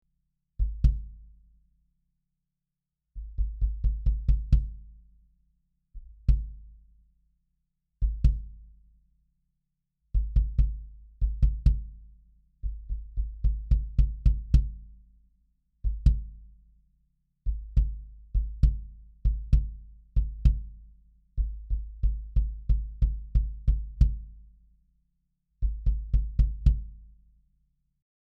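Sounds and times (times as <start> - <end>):
modern kick drum: 0.6 - 1.3, 3.2 - 5.0, 6.0 - 6.9, 8.0 - 8.8, 10.2 - 15.1, 15.8 - 16.6, 17.5 - 24.6, 25.6 - 27.2.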